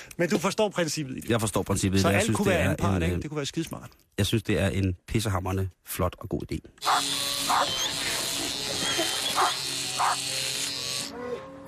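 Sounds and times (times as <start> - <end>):
speech: 0.2 - 7.8
dog barking: 6.8 - 7.8, 9.4 - 10.2
electric shaver buzzing while shaving dogs: 6.8 - 11.6.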